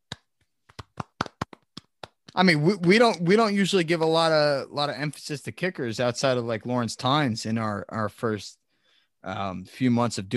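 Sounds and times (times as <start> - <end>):
hand claps: 0.0 - 4.0
speech: 2.4 - 8.6, 9.2 - 10.3.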